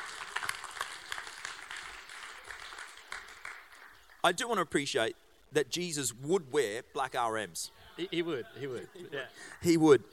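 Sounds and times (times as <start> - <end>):
crowd applauding: 0.0 - 4.2
speech: 4.2 - 10.1.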